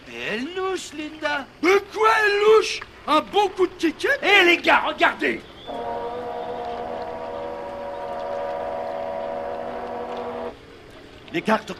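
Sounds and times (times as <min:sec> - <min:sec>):
speech: 0:00.8 - 0:05.8, 0:11.3 - 0:11.7
small boat motor droning: 0:05.6 - 0:11.3.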